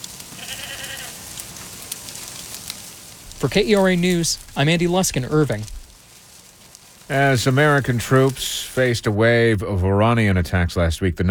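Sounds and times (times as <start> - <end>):
steady hiss of outdoor noise: 0.0 - 11.2
goat bleating: 0.3 - 1.4
speech: 3.4 - 5.8, 7.1 - 11.2.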